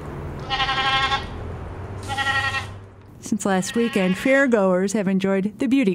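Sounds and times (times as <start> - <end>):
goat bleating during a bath: 0.4 - 1.4, 2.0 - 2.8, 3.5 - 4.5
speech: 3.3 - 5.9.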